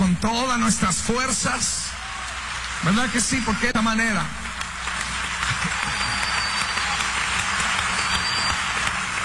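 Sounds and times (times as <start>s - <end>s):
speech: 0.2s - 2.0s, 2.8s - 4.4s
large crowd applauding: 2.0s - 9.2s.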